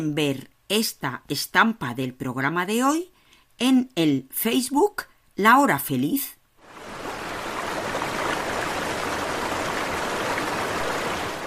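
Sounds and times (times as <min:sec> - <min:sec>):
speech: 0:00.0 - 0:06.4
river water rushing: 0:06.6 - 0:11.4.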